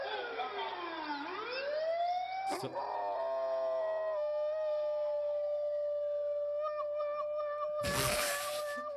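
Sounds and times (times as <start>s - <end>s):
wailing siren: 0.0s - 6.8s
sharp broadband bursts: 7.8s - 8.8s.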